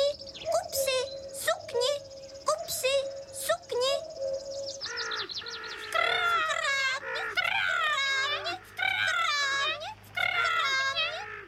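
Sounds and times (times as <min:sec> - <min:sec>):
cuckoo calling: 0:00.0 - 0:11.4
faint low hum: 0:00.0 - 0:11.4.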